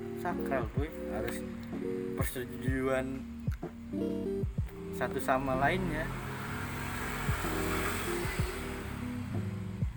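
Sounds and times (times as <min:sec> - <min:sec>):
speech: 0:00.2 - 0:06.3, 0:07.2 - 0:08.5
motorcycle roaring past outdoors shifting gears: 0:05.0 - 0:09.9.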